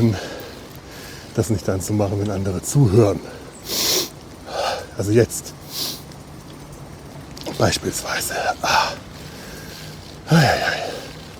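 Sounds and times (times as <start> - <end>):
loud heavy gasping breath with a voiced edge: 0.0 - 1.4, 3.3 - 5.0, 7.5 - 11.3
speech: 1.4 - 3.9, 5.0 - 5.9, 7.6 - 9.0, 10.3 - 10.8.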